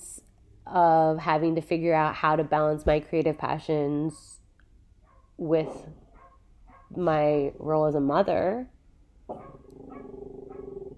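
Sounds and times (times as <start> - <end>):
speech: 0.7 - 4.3, 5.4 - 6.0, 6.9 - 10.6
pet dog barking: 5.0 - 7.0, 9.3 - 10.9.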